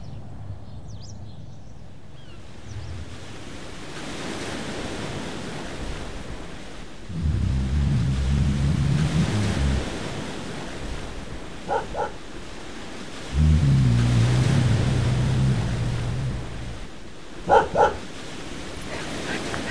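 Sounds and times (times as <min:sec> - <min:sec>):
wind: 0:00.0 - 0:19.7
surf: 0:02.6 - 0:19.7
low droning rumble: 0:07.1 - 0:10.0, 0:13.4 - 0:17.0
dog barking: 0:11.6 - 0:12.2, 0:17.4 - 0:18.2.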